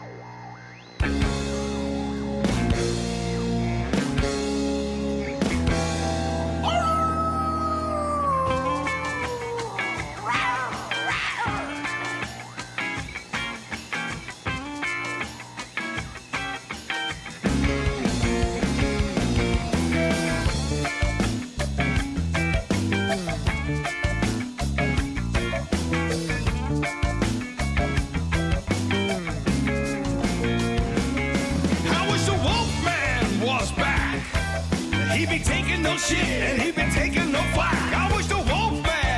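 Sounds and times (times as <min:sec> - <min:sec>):
band with a driving, steady beat: 0:01.0 - 0:07.2, 0:08.1 - 0:39.1
long wolf-like howl in a song: 0:06.6 - 0:12.0.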